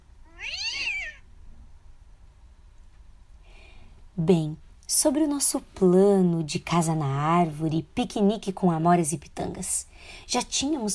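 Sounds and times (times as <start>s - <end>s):
quiet low hum: 0.0s - 10.9s
cat meowing: 0.2s - 1.3s
speech: 4.2s - 10.9s.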